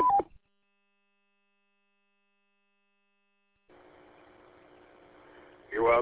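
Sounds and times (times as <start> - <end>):
steady wash of radio static: 3.7 - 6.0.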